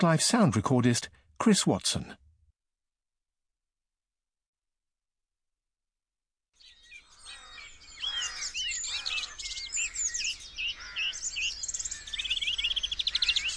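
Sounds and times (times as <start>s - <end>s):
speech: 0.0s - 2.2s
garden birds dawn chorus chirping, whistling and trilling: 6.6s - 13.5s.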